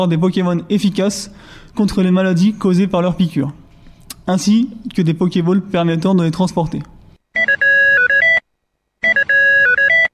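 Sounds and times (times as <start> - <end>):
speech: 0.0 - 3.6, 4.3 - 7.0
phone ringtone electronic melody of stepped tones: 7.3 - 8.4, 9.0 - 10.1.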